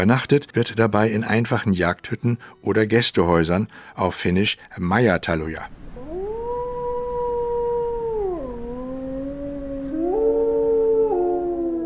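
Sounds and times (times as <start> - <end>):
speech: 0.0 - 5.8
faint wind-like hiss: 3.6 - 10.6
wolves howling: 6.0 - 11.8.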